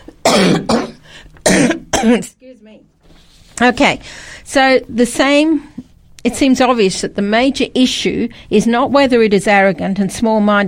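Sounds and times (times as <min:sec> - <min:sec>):
throat clearing: 0:00.2 - 0:02.3
person coughing: 0:00.2 - 0:02.4
speech: 0:02.0 - 0:02.9, 0:03.6 - 0:10.6.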